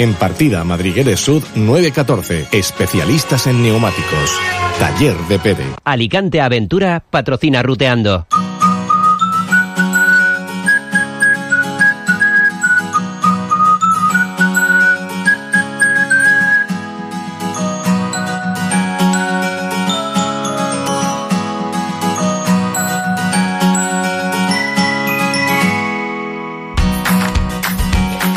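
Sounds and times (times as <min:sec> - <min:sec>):
speech: 0:00.0 - 0:08.5
bright whistled melody: 0:08.3 - 0:21.4, 0:22.0 - 0:26.7
upbeat instrumental jingle with bass and percussion: 0:08.3 - 0:28.3.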